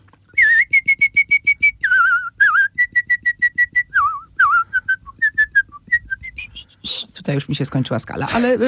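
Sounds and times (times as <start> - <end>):
woman whistling a high melody: 0.4 - 6.8
speech: 7.3 - 8.6.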